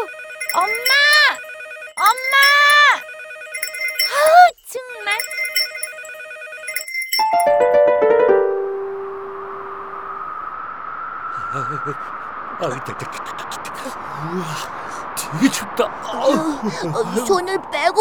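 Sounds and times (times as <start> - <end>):
bright electronic bell ringing: 0.0 - 10.2
falling run of chimes: 0.0 - 10.4
speech: 0.5 - 1.4, 2.0 - 3.1, 4.1 - 5.4, 7.3 - 7.8, 11.6 - 17.9
laughter: 11.4 - 17.5.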